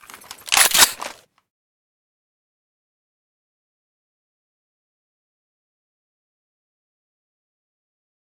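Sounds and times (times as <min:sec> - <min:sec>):
MDR rifle misfiring: 0:00.2 - 0:01.2.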